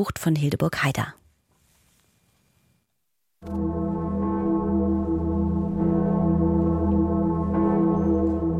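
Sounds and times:
speech: 0.0 - 1.2, 3.4 - 3.8
huge great bell of Erfurt Cathedral in Germany tolling: 3.4 - 8.5.

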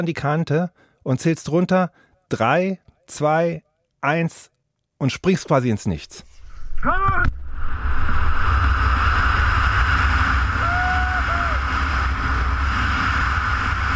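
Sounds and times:
speech: 0.0 - 7.4
wind rushing past a wingsuit flyer diving into a valley: 6.2 - 13.9
deep low rumble: 6.3 - 13.9.

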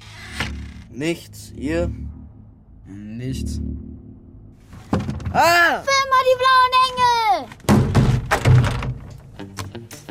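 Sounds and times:
speech: 1.0 - 2.0, 2.9 - 4.0, 5.3 - 7.6
door thumping shut: 7.6 - 9.1.

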